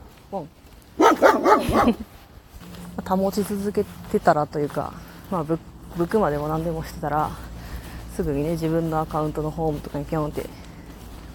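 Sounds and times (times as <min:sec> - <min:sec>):
speech: 0:00.3 - 0:02.2, 0:03.0 - 0:07.5, 0:08.2 - 0:10.6
dog barking: 0:01.0 - 0:02.0.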